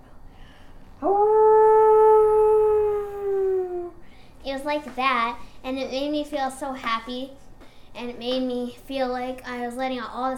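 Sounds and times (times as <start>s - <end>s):
person imitating a wolf howl with their own voice: 1.0s - 4.0s
speech: 4.7s - 7.4s, 8.0s - 10.3s.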